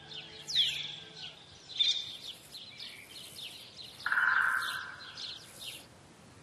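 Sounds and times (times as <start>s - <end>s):
Iberian magpie raspy chirps and buzzing call: 4.0s - 5.4s.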